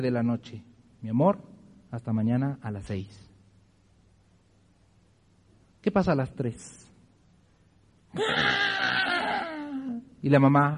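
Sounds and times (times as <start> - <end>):
speech: 0.0 - 3.3, 5.8 - 6.9, 8.2 - 9.1, 10.2 - 10.7
voice imitating a crying baby's wail: 8.2 - 10.2.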